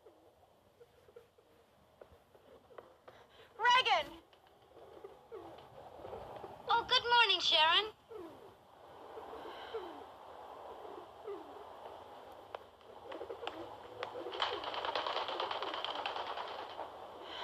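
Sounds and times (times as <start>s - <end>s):
doves cooing: 0.0s - 6.7s, 8.0s - 17.4s
speech: 7.4s - 8.0s
dense fluttering rattle: 14.3s - 17.0s.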